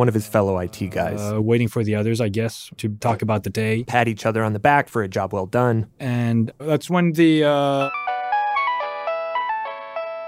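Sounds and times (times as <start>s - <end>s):
speech: 0.0s - 8.1s
phone ringing with a melodic electronic ringtone: 7.8s - 10.2s.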